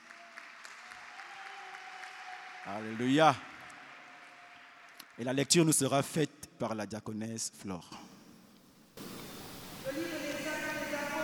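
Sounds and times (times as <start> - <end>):
church congregation applauding the preacher: 0.0 - 5.9, 9.0 - 11.2
speech: 2.6 - 3.5, 5.2 - 8.1.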